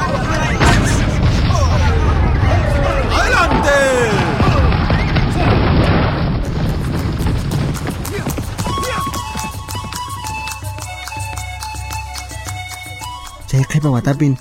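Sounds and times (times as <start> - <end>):
loud rumbling noise: 0.0 - 8.6
horses' hooves galloping: 0.0 - 14.3
speech: 13.8 - 14.3.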